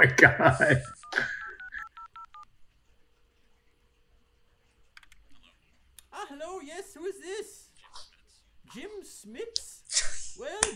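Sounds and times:
speech: 0:00.0 - 0:01.3, 0:08.7 - 0:10.7
telephone keypad tones dialing a number: 0:00.9 - 0:02.5
soft clicks: 0:04.8 - 0:06.1.

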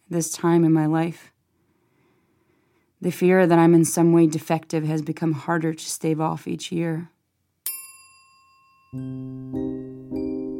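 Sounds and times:
speech: 0:00.1 - 0:01.3, 0:03.0 - 0:07.2, 0:08.9 - 0:10.2
bright bell strike with long ringing decay: 0:07.7 - 0:10.5.

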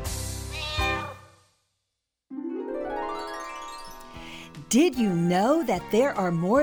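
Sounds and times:
cat meowing: 0:00.5 - 0:01.3
speech: 0:04.7 - 0:06.6.

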